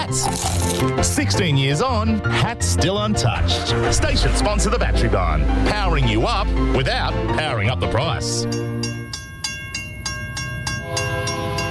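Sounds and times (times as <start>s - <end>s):
speech: 0.0s - 9.0s
freight train horn blaring: 10.8s - 11.7s.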